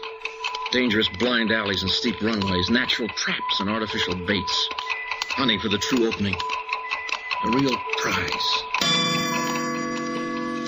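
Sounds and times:
clock ticking: 0.0s - 10.6s
speech: 0.7s - 4.8s, 5.4s - 6.6s, 7.4s - 9.1s
clock chime ringing: 8.8s - 10.6s.

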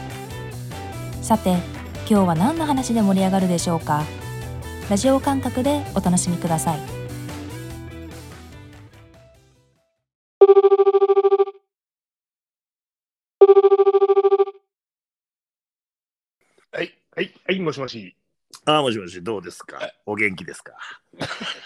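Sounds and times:
speech: 1.3s - 4.2s, 4.9s - 7.0s, 17.7s - 21.6s
electronic telephone ringing: 10.4s - 11.6s, 13.4s - 14.6s
laughter: 20.8s - 21.6s.

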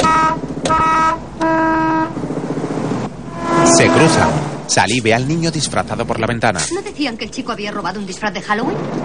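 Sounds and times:
car horn honking: 0.0s - 2.2s, 3.2s - 4.6s
low engine rumble: 0.0s - 9.0s
speech: 3.8s - 9.0s.

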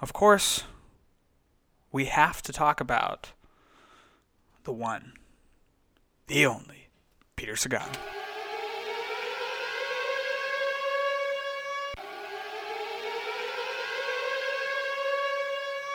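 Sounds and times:
speech: 0.0s - 0.7s, 1.9s - 3.4s, 4.6s - 5.2s, 6.3s - 6.8s, 7.4s - 8.2s
civil defense siren wailing: 7.8s - 15.9s.

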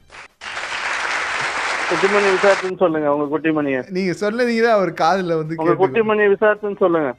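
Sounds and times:
loud clapping from a crowd: 0.0s - 2.7s
speech: 1.9s - 7.1s.

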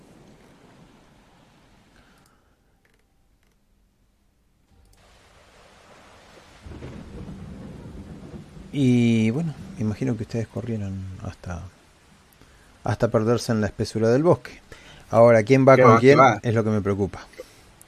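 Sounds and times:
steady rain: 0.0s - 2.4s, 4.8s - 17.8s
low thunder rumbling: 6.4s - 12.8s
speech: 8.7s - 11.8s, 12.8s - 17.4s.

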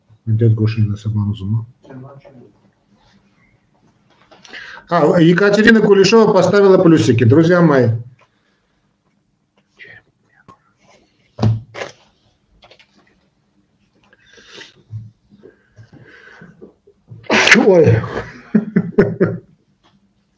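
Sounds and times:
speech: 0.3s - 2.6s, 4.8s - 8.2s, 17.7s - 18.3s
person sneezing: 17.2s - 18.3s
laughter: 18.0s - 19.5s.

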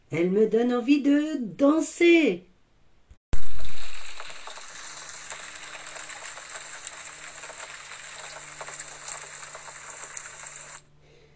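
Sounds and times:
speech: 0.1s - 2.5s
steady rain: 3.4s - 10.9s.

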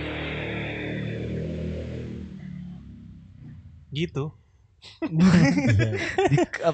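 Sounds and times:
motorcycle engine passing outside: 0.0s - 4.5s
speech: 3.9s - 6.7s
laughter: 5.0s - 6.7s.

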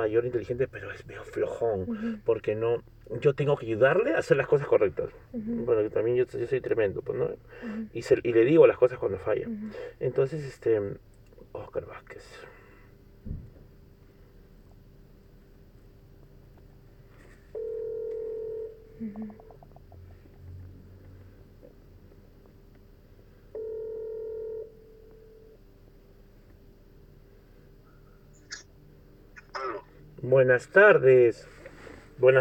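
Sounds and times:
speech: 0.0s - 12.5s, 19.0s - 19.4s, 30.2s - 31.5s, 32.2s - 32.3s
telephone ringback tone of an unanswered call: 17.6s - 19.4s, 23.5s - 25.5s.

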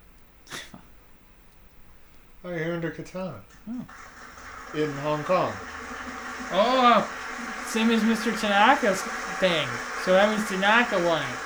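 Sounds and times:
faint snuffly exhale: 0.5s - 0.8s
sneeze: 0.5s - 0.9s
speech: 2.4s - 11.4s
laughter: 3.9s - 11.4s.

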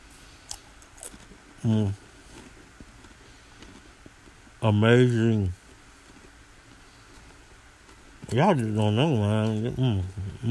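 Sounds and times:
chewing a lightly salted crunchy cracker: 0.4s - 4.6s, 5.6s - 9.7s
hummed voice sound: 1.6s - 2.0s, 8.4s - 10.4s
speech: 1.6s - 2.0s, 4.6s - 5.6s, 8.3s - 10.4s.

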